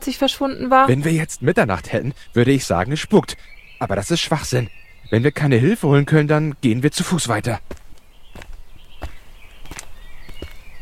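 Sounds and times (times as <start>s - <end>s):
speech: 0.1s - 7.8s
footsteps crunching on a rough uneven path: 7.0s - 10.8s.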